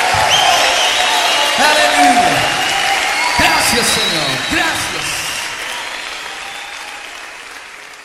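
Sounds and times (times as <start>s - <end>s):
crowd applauding: 0.0s - 8.0s
speech: 3.8s - 4.8s.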